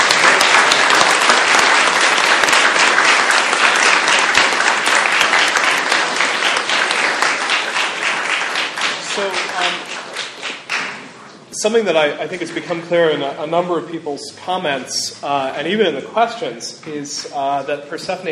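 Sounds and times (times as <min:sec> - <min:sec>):
large audience applause: 0:00.0 - 0:11.1
speech: 0:11.6 - 0:18.3.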